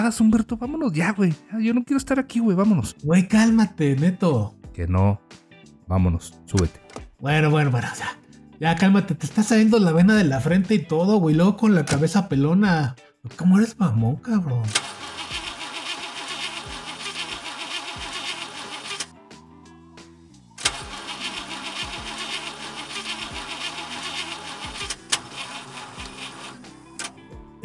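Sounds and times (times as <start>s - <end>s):
speech: 0.0s - 14.9s
car engine cranking but failing to start: 14.7s - 19.1s, 20.6s - 27.2s.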